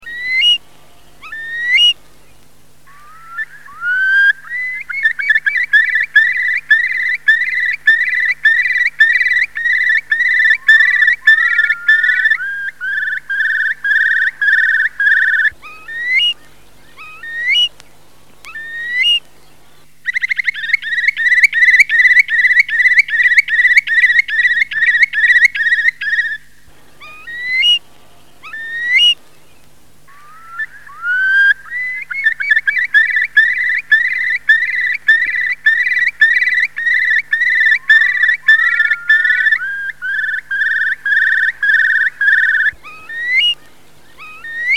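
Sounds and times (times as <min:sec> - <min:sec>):
curlew: 0:00.0 - 0:44.7.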